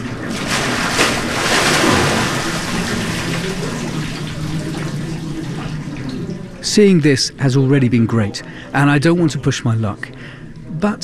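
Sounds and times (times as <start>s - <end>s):
water splashing as a pilgrim is rocked into a stone bath of cold mountain water: 0.0s - 6.7s
speech: 6.8s - 11.0s.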